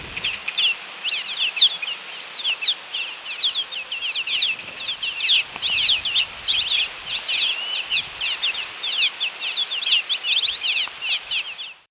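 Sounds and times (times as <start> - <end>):
Cave Swallow twittering calls: 0.0 - 11.8.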